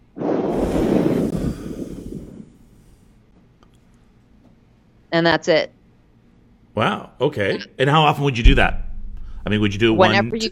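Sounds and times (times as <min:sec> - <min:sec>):
forceful exhale blowing out imaginary birthday candles: 0:00.2 - 0:03.2
speech: 0:05.1 - 0:05.8, 0:06.8 - 0:08.8, 0:09.4 - 0:10.5.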